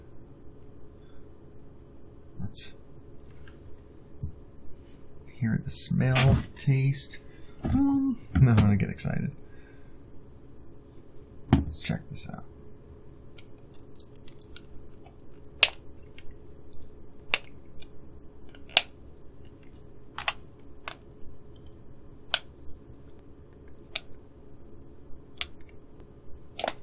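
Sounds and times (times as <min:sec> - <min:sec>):
speech: 0:02.5 - 0:02.8, 0:05.4 - 0:09.4, 0:11.7 - 0:12.6
plastic clicks and snaps from prying open a child-lock package with a plastic seal: 0:13.7 - 0:16.2, 0:26.6 - 0:26.8.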